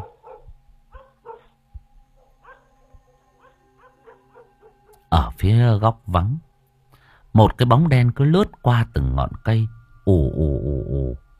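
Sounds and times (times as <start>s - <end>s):
dog barking and yipping at night: 0.0s - 1.6s, 2.3s - 2.8s, 3.4s - 5.0s
speech: 5.1s - 6.5s, 7.4s - 11.2s.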